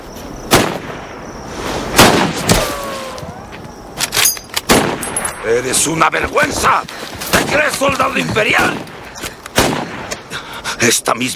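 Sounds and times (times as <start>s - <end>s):
gunshots at target practice: 0.5s - 1.0s, 1.9s - 3.0s, 4.6s - 5.3s, 6.5s - 10.3s
speech: 5.5s - 8.9s, 10.8s - 11.3s.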